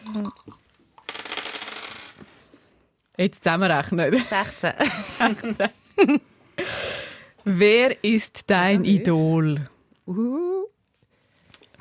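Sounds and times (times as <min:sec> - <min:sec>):
dice rattling and clattering across a hard surface: 0:00.0 - 0:02.3
speech: 0:00.2 - 0:00.6, 0:03.2 - 0:06.3, 0:07.4 - 0:10.6
laughter: 0:04.2 - 0:06.2.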